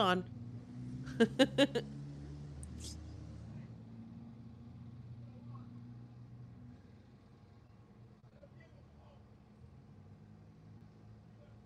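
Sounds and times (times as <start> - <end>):
speech: 0.0 - 0.4, 1.2 - 2.0
large vehicle engine rumbling: 0.0 - 11.6
laughter: 1.1 - 1.8.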